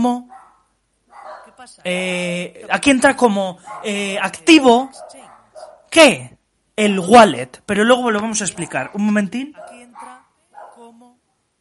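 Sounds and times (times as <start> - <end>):
speech: 0.0 - 0.4, 1.6 - 5.3, 5.9 - 10.2
dog barking and yipping: 0.3 - 1.6, 3.6 - 5.9, 8.6 - 10.8.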